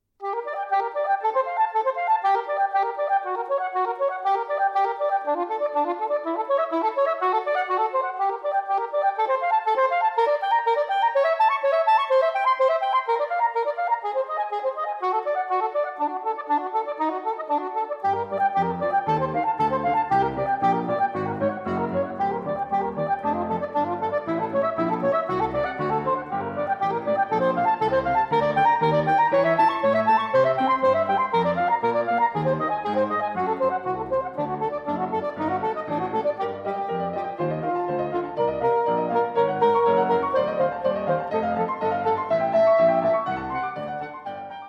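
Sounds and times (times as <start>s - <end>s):
violin and piano sonata arranged for saxophone and piano: 0.2s - 44.6s.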